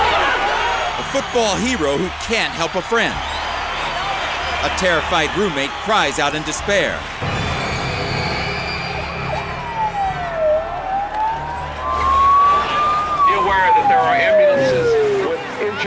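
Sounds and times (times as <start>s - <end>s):
crowd noise: 0.0s - 15.8s
speech: 1.2s - 3.4s, 4.6s - 7.3s, 13.5s - 15.0s
ambulance siren wailing on a football field after a crowd crush: 7.3s - 15.8s.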